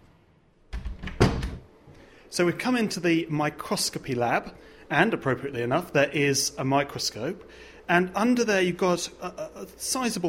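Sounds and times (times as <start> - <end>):
heavy lab door thud: 0.7 - 1.6
speech: 2.3 - 10.2.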